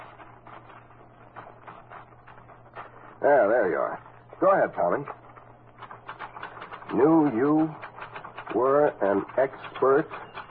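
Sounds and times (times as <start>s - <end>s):
low steady hum: 0.0s - 10.4s
speech: 3.2s - 5.2s, 6.9s - 7.8s, 8.5s - 10.2s
paper being rolled into a typewriter: 4.5s - 10.4s.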